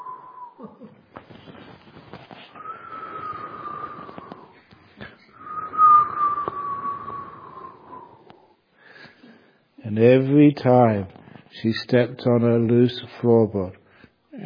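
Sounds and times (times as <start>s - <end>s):
wind whistling through a narrow ventilation slit in an open window without glass: 2.5s - 4.6s, 5.3s - 8.4s
speech: 9.9s - 13.8s.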